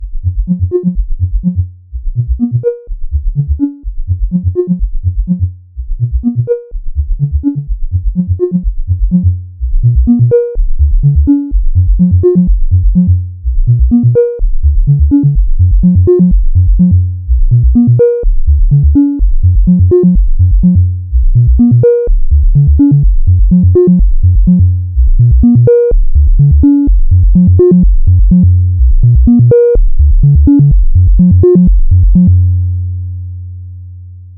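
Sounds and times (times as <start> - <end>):
sine tone pattern: 0.2 - 34.3.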